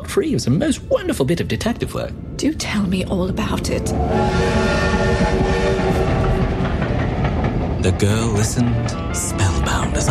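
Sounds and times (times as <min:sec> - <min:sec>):
speech: 0:00.1 - 0:06.2, 0:07.8 - 0:10.0
train rumbling as it draws into Calais station: 0:00.5 - 0:10.0
sustained tonal whines from a train: 0:03.4 - 0:07.8.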